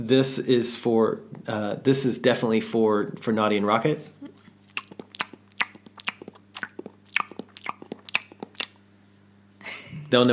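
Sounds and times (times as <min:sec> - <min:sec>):
speech: 0:00.0 - 0:04.2, 0:10.1 - 0:10.3
wet chewing with smacking and crunching: 0:04.6 - 0:08.8.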